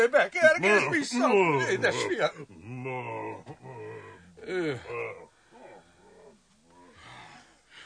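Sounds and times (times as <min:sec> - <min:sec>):
speech: 0:00.0 - 0:03.2, 0:04.5 - 0:05.2
bear growling and roaring: 0:01.6 - 0:07.5.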